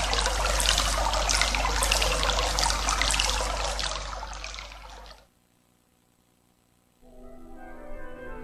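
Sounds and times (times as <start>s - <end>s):
small stream trickling and gurgling: 0.0s - 5.3s.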